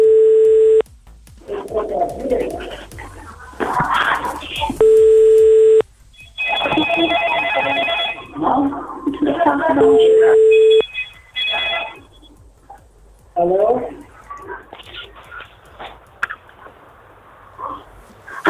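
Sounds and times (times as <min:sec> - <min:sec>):
longer higher telephone tone: 0:00.0 - 0:00.8, 0:04.8 - 0:08.4, 0:09.8 - 0:12.3
noise: 0:00.0 - 0:18.4
telephone ringing tones on a placed call: 0:04.8 - 0:08.4, 0:09.8 - 0:12.2.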